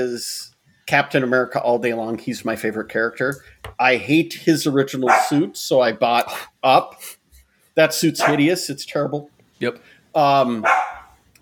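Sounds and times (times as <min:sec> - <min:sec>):
speech: 0:00.0 - 0:07.2, 0:07.8 - 0:10.9
dog barking: 0:05.1 - 0:05.4, 0:08.2 - 0:08.5, 0:10.6 - 0:11.2.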